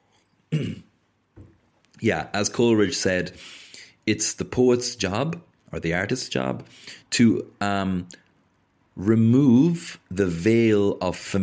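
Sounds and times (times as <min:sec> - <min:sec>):
throat clearing: 0:00.5 - 0:00.9
speech: 0:02.0 - 0:08.2, 0:09.0 - 0:11.4.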